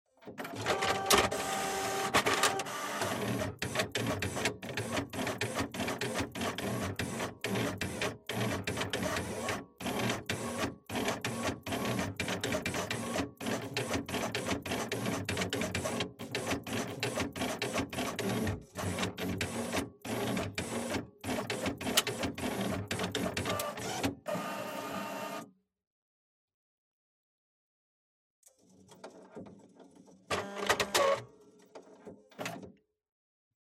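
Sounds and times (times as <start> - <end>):
printer: 0.2 - 25.5, 28.6 - 32.7.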